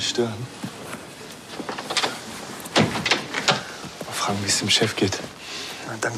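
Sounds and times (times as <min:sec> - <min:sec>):
speech: 0:00.1 - 0:00.6, 0:04.2 - 0:06.1
door opening: 0:01.4 - 0:04.5.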